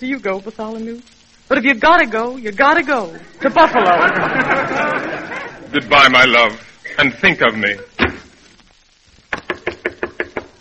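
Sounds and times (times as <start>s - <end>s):
speech: 0.0s - 8.0s
laughter: 3.1s - 7.6s
sharp knocks on a door: 9.3s - 10.6s.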